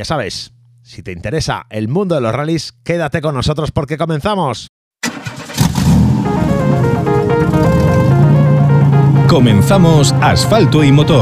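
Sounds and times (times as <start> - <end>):
speech: 0.0 - 4.7, 9.3 - 11.2
car engine roaring and revving as opening theme of a motoring program: 5.1 - 11.2.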